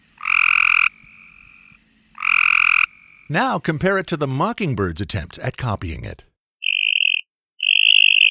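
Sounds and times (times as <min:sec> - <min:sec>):
Cope's gray tree frog calling with buzzy pulsed trills: 0:00.0 - 0:04.0, 0:06.6 - 0:08.2
speech: 0:03.3 - 0:06.3.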